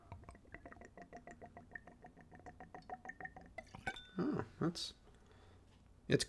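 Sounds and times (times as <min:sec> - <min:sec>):
spirit glugging from a bottle into a Glencairn glass: 0:00.0 - 0:04.2
speech: 0:04.2 - 0:05.0, 0:06.1 - 0:06.2.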